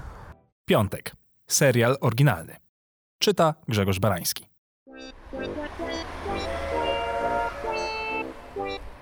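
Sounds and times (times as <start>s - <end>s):
speech: 0.7s - 2.6s, 3.2s - 5.5s
train horn blasts: 6.1s - 8.6s.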